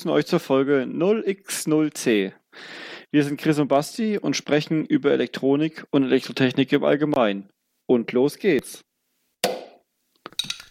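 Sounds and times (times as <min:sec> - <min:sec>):
speech: 0:00.0 - 0:08.9
beer bottle cap pried off with a bottle opener: 0:09.4 - 0:10.6
small clinks and rattles: 0:10.2 - 0:10.6.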